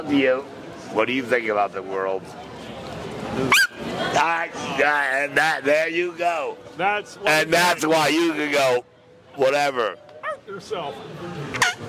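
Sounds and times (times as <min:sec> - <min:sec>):
speech: 0:00.0 - 0:02.5, 0:03.2 - 0:11.7
dog high-pitched yelping whines: 0:03.5 - 0:03.8.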